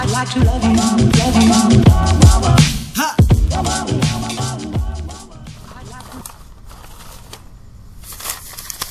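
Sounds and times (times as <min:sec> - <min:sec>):
speech: 0:00.2 - 0:04.0
paper crinkling and crackling: 0:05.5 - 0:08.8.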